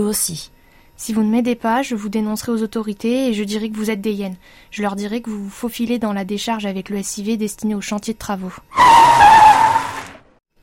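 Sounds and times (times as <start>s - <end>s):
speech: 0.0s - 9.3s
car tires screeching as the car skids to a halt: 8.7s - 10.4s.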